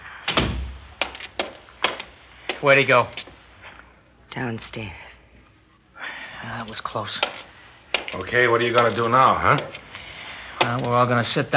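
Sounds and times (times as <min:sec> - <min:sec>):
door swinging shut with a heavy booming thud: 0:00.3 - 0:02.1
speech: 0:02.6 - 0:03.3, 0:04.4 - 0:05.0, 0:06.4 - 0:07.4, 0:08.1 - 0:09.8, 0:10.6 - 0:11.5.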